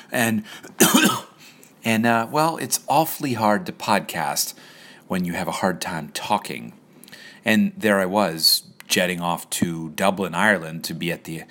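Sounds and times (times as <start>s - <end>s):
speech: 0.1s - 6.8s, 7.4s - 11.5s
rough throaty coughs from a person with a cold: 0.8s - 1.4s.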